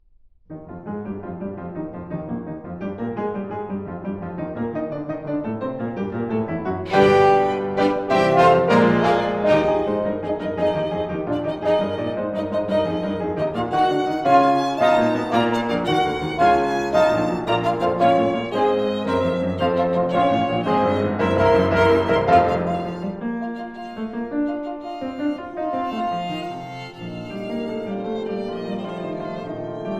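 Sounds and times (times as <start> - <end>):
piano, violin and horn trio: 1.0 - 29.9.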